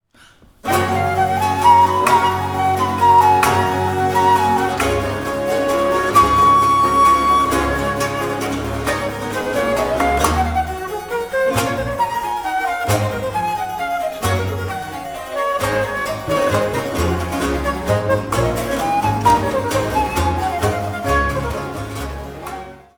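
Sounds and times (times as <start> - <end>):
musical ensemble: 0.6 - 22.9.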